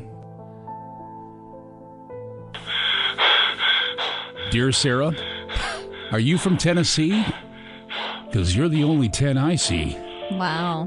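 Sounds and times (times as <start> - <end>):
heavy gusty breathing: 2.6 - 10.8
speech: 4.6 - 7.4, 8.3 - 10.8.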